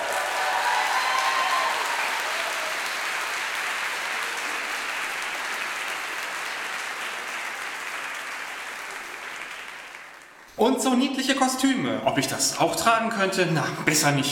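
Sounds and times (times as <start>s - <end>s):
large audience applauding after a dance performance: 0.0s - 10.6s
speech: 10.6s - 14.3s.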